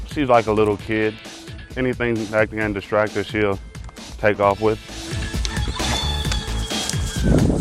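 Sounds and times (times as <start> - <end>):
speech: 0.2 - 3.7, 4.2 - 5.0, 7.2 - 7.4
plush rooster dog toy clucking: 5.3 - 7.4.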